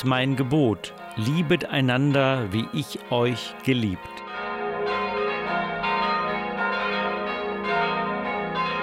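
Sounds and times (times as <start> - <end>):
speech: 0.0 - 4.2
smallest family bell of a parish church ringing: 0.0 - 8.8.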